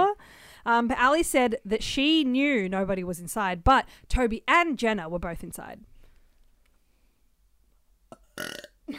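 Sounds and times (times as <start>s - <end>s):
speech: 0.6s - 5.9s, 8.4s - 8.9s
loud burp with a rough gurgling texture: 8.1s - 8.9s.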